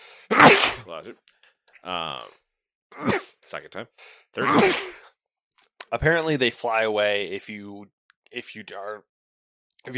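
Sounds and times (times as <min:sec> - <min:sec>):
single loud sneeze: 0:00.3 - 0:00.8, 0:03.0 - 0:03.4, 0:04.4 - 0:05.0
speech: 0:00.9 - 0:05.1, 0:05.9 - 0:09.1.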